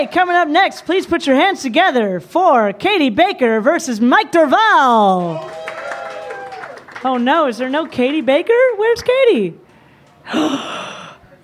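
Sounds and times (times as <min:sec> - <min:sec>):
speech: 0:00.0 - 0:05.6, 0:07.0 - 0:09.6, 0:10.3 - 0:10.8
crowd gasping together: 0:09.7 - 0:11.4.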